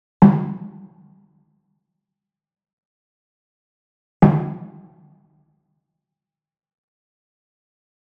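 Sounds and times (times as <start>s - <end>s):
mounted wood drum hit with medium beater: 0.2s - 0.8s, 4.2s - 4.8s.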